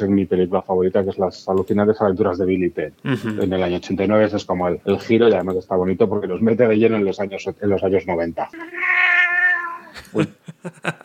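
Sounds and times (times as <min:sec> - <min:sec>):
speech: 0:00.0 - 0:09.1, 0:10.1 - 0:11.0
laughter: 0:03.1 - 0:03.5, 0:09.9 - 0:11.0
cat meowing into microphone while climbing onto a person: 0:08.6 - 0:09.9.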